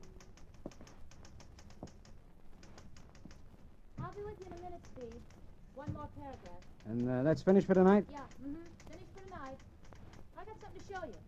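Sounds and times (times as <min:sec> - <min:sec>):
keystroke clicks of someone typing a story: 0:00.0 - 0:11.2
speech: 0:04.2 - 0:08.8, 0:10.5 - 0:11.2.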